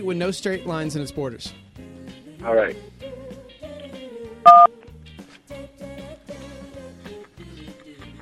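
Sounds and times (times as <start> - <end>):
speech: 0.0 - 1.6, 2.4 - 3.0, 4.4 - 4.8
telephone keypad tone as a number key is pressed: 4.5 - 4.7.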